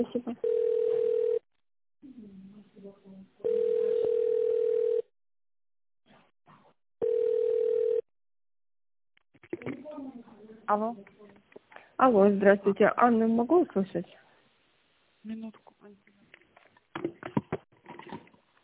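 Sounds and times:
speech: 0.0 - 0.5, 10.7 - 11.1, 12.0 - 14.2, 15.2 - 16.0
steady telephone line tone while a business call is transferred: 0.4 - 1.4, 3.4 - 5.1, 7.0 - 8.0.

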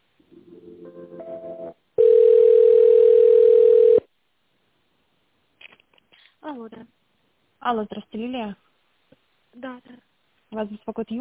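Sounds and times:
telephone tones while a call is transferred: 2.0 - 4.1
speech: 7.6 - 8.6, 9.6 - 10.0, 10.6 - 11.1.

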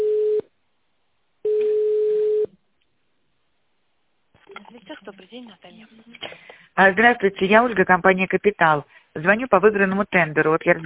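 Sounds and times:
telephone line tone during call transfer to internal extension: 0.0 - 0.5, 1.5 - 2.5
speech: 5.3 - 10.8.

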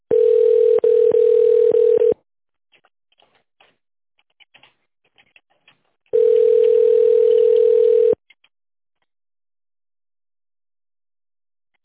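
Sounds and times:
telephone ringback tone while a call connects: 0.1 - 2.2, 6.2 - 8.2.

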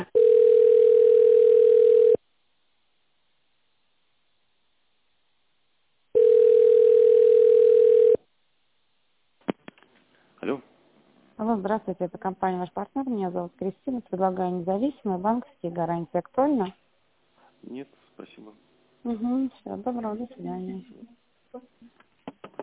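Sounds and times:
telephone line tones during a call transfer: 0.2 - 2.2, 6.2 - 8.2
speech: 11.7 - 16.8, 17.6 - 21.7.

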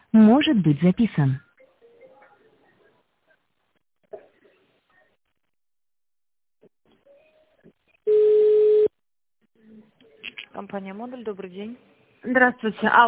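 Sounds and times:
speech: 0.2 - 1.4, 10.6 - 13.0
telephone ringback tone while a call is transferred to a company manager: 8.1 - 8.9.

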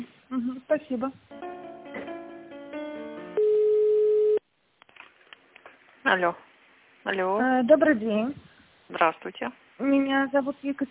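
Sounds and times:
speech: 0.7 - 1.4, 6.0 - 10.9
steady mid-pitched telephone line tone while a call is transferred: 2.7 - 4.4
soft telephone tones while an office call is transferred: 3.3 - 4.4.

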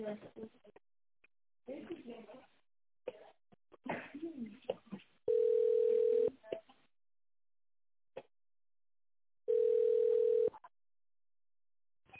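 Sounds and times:
telephone ringback tone: 5.3 - 6.3, 9.5 - 10.5.

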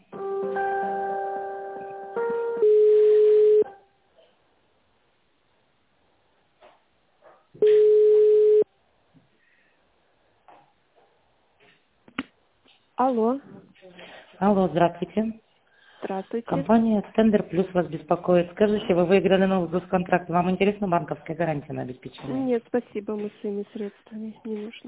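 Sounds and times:
long steady telephone ringback tones: 2.2 - 3.8, 7.6 - 8.7
stepped multi-tone telephone line beeps during a call transfer: 2.6 - 3.7, 7.6 - 8.6
speech: 13.0 - 13.5, 14.4 - 15.4, 16.1 - 24.8.

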